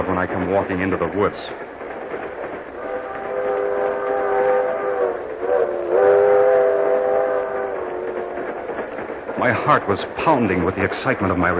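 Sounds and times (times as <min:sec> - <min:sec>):
speech: 0:00.0 - 0:01.7, 0:09.4 - 0:11.5
train rumbling along the rails: 0:00.0 - 0:11.5
sustained tonal whistling: 0:02.8 - 0:08.5.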